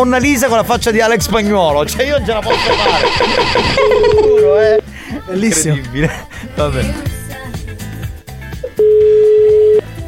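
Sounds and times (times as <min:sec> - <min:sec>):
speech: 0:00.0 - 0:07.2
music: 0:00.0 - 0:10.0
telephone ringback tone on an outgoing call: 0:02.4 - 0:04.8, 0:08.6 - 0:09.8
laughter: 0:02.5 - 0:07.0.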